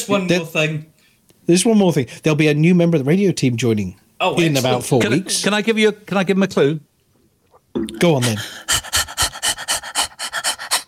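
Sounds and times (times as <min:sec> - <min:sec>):
speech: 0:00.0 - 0:00.9, 0:01.5 - 0:06.9, 0:07.8 - 0:08.9
person imitating an excited puppy's pant: 0:08.2 - 0:10.8.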